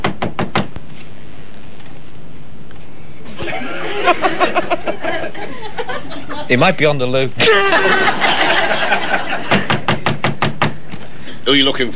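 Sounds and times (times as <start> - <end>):
laughter: 3.3 - 6.8, 7.4 - 9.9
speech: 4.1 - 9.6, 11.5 - 11.9
sharp knocks on a door: 9.5 - 10.8.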